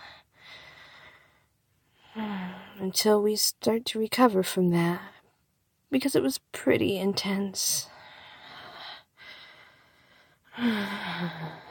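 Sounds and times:
slow soft breathing: 0:00.0 - 0:02.8, 0:07.8 - 0:11.6
speech: 0:02.2 - 0:05.1, 0:05.9 - 0:07.9, 0:10.6 - 0:11.6.

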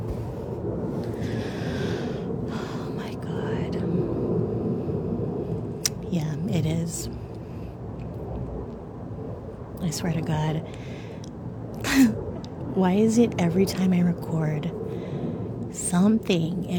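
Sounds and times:
airplane flying overhead: 0:00.0 - 0:16.7
person whispering: 0:02.5 - 0:04.0
speech: 0:09.9 - 0:10.9, 0:12.8 - 0:14.8, 0:15.9 - 0:16.7.

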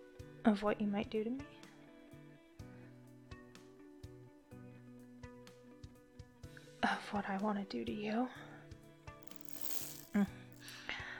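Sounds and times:
speech: 0:00.4 - 0:01.7, 0:06.9 - 0:08.5, 0:10.1 - 0:10.4
zipper being pulled up: 0:09.2 - 0:10.2.

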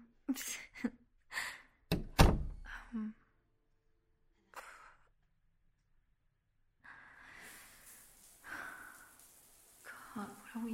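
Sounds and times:
speech: 0:00.3 - 0:01.6
door shutting with a heavy thunk: 0:01.9 - 0:02.6.

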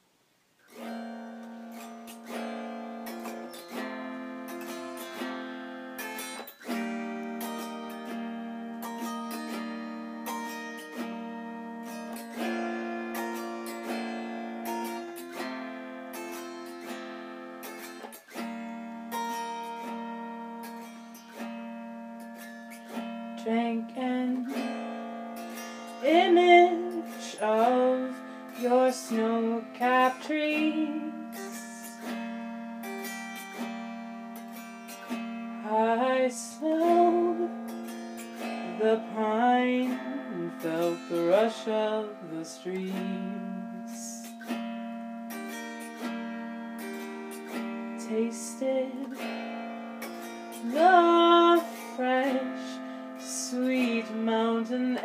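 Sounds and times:
autoharp: 0:00.7 - 0:55.0
person singing an original song: 0:23.4 - 0:24.9, 0:26.0 - 0:32.3, 0:35.6 - 0:37.8, 0:38.4 - 0:44.5, 0:48.0 - 0:49.4, 0:50.6 - 0:55.0.

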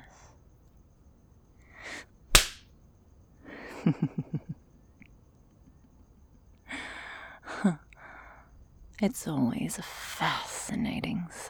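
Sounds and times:
whip crack: 0:02.3 - 0:02.6
speech: 0:03.8 - 0:04.5, 0:09.0 - 0:11.4.

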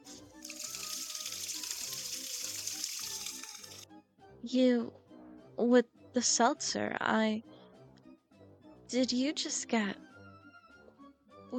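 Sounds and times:
shower water running in a small cramped stall: 0:00.0 - 0:03.8
speech: 0:04.4 - 0:05.0, 0:05.6 - 0:07.5, 0:08.9 - 0:10.0.

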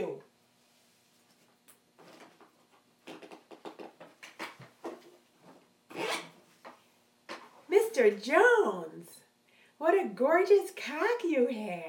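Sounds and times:
zipper being undone: 0:03.0 - 0:05.0, 0:05.9 - 0:06.5
speech: 0:08.0 - 0:09.2, 0:09.8 - 0:11.8.

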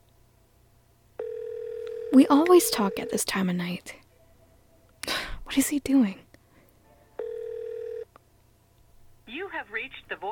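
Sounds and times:
unanswered phone ringing on the line: 0:01.2 - 0:03.2, 0:07.2 - 0:08.1
speech: 0:02.1 - 0:04.0, 0:05.5 - 0:06.2, 0:09.6 - 0:10.3.

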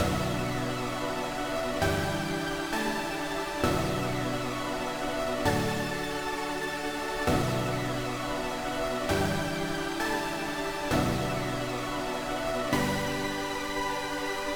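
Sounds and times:
ambient synth: 0:00.0 - 0:14.5.

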